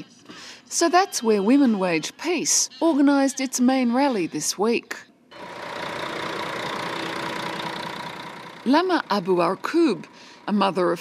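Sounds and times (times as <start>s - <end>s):
speech: 0.7s - 5.1s, 8.7s - 11.0s
bus engine idling in the West Bank: 5.3s - 11.0s.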